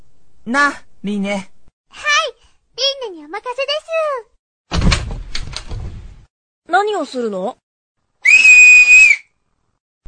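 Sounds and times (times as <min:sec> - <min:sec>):
speech: 0:00.5 - 0:02.1, 0:03.1 - 0:04.3, 0:06.7 - 0:07.6
person whistling with the mouth to call a bird: 0:08.2 - 0:09.3.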